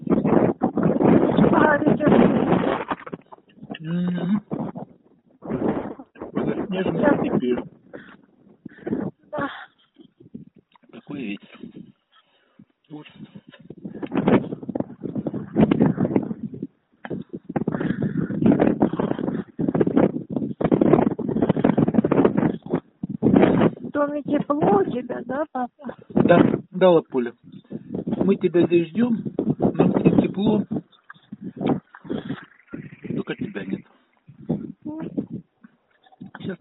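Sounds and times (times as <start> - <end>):
gusty wind buffeting close to the microphone: 0.0 - 36.6
speech: 26.8 - 27.1, 28.5 - 29.4.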